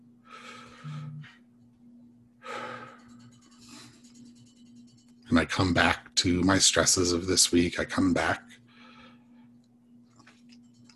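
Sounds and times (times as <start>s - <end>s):
steady low hum: 0.0s - 10.9s
slow deep breath taken during a guided prayer: 0.2s - 1.4s, 2.4s - 4.0s, 8.7s - 9.5s
speech: 5.3s - 8.4s.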